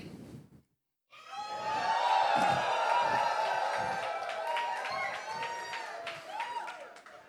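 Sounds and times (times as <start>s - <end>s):
audience shouting and cheering in rejoicing: 1.2s - 7.2s
scattered audience claps: 2.3s - 7.2s.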